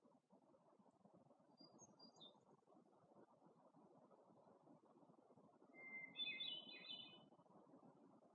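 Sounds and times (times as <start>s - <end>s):
hermit thrush fluty song in Algonquin Park: 1.6s - 2.4s, 5.7s - 7.3s.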